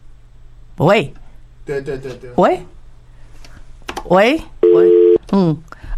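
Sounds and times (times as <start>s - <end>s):
speech: 0.8s - 2.8s, 4.0s - 5.8s
telephone busy tone: 4.6s - 5.2s.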